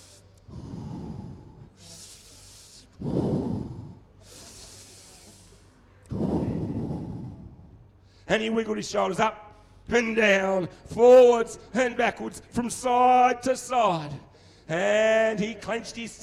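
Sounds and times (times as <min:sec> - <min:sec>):
deep breaths: 0:00.0 - 0:08.3, 0:14.2 - 0:14.7
speech: 0:08.3 - 0:16.2.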